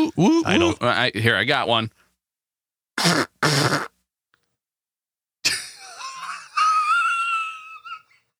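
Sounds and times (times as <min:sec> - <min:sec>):
speech: 0:00.0 - 0:02.0, 0:03.0 - 0:03.9
raspy fart-like blasts: 0:03.0 - 0:03.9
laughter: 0:05.5 - 0:08.0.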